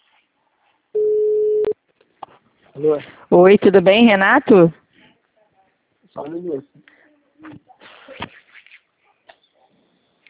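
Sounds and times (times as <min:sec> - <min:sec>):
telephone ringing tone while a call is placed: 0:01.0 - 0:01.8
speech: 0:02.8 - 0:04.8, 0:06.2 - 0:07.7.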